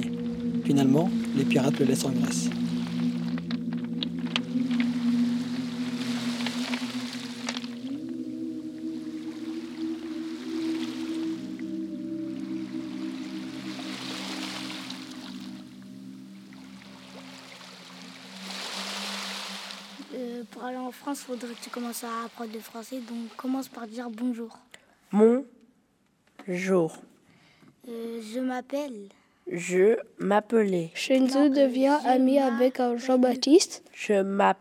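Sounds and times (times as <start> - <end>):
boat engine drone: 0.0 - 23.4
water swells washing past a boat: 0.0 - 24.2
speech: 0.6 - 2.8, 21.1 - 25.5, 26.5 - 27.1, 27.9 - 34.5.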